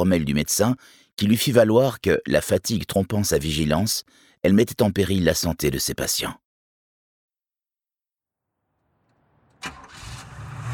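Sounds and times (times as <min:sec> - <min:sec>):
speech: 0:00.0 - 0:06.4
Triumph car engine starting in a hospital car park at night: 0:09.1 - 0:10.7.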